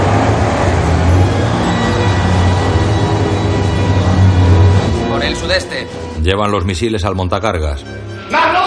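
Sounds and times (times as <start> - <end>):
armoured police vehicle approaching a gate with engine roar and low rumble: 0.0 - 6.2
speech: 6.3 - 8.5.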